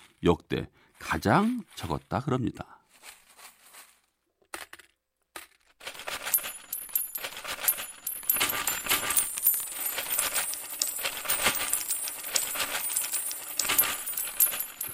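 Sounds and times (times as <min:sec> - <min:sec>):
speech: 0:00.2 - 0:02.8
coins clinking: 0:05.8 - 0:14.9.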